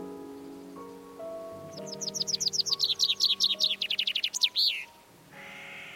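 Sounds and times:
bird singing repeated chirps: 0:00.0 - 0:05.9
soft steady musical drone: 0:00.0 - 0:05.9.

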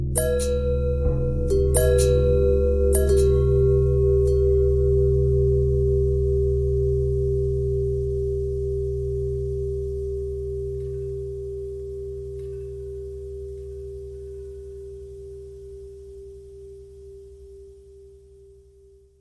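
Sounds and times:
long bell ringing: 0:00.2 - 0:15.2.

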